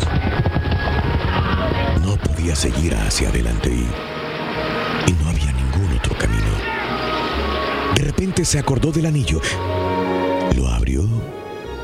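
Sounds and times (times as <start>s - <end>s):
horses trotting with clip-clop hooves: 0.0s - 2.0s
dense noisy background: 0.0s - 11.8s
speech: 2.5s - 5.5s, 6.2s - 6.7s, 8.1s - 9.9s.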